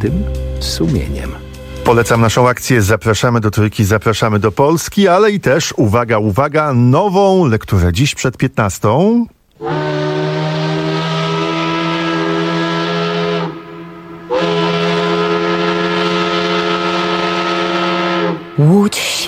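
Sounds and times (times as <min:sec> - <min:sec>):
factory whistle sounding at dawn in Łódź: 0:00.0 - 0:02.4, 0:09.6 - 0:19.2
speech: 0:00.0 - 0:09.9.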